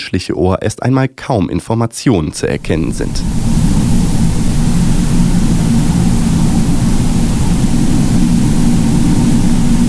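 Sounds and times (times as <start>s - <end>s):
speech: 0.1s - 3.6s
faint hiss: 2.3s - 9.8s
underwater rumble from a hydrophone: 2.4s - 9.8s.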